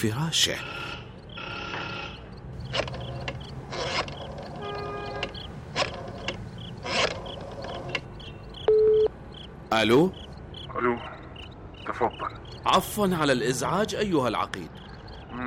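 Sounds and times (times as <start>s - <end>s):
speech: 0.0s - 0.9s, 9.7s - 10.2s, 12.0s - 14.8s
telephone being dialed in a phone booth: 0.6s - 8.1s.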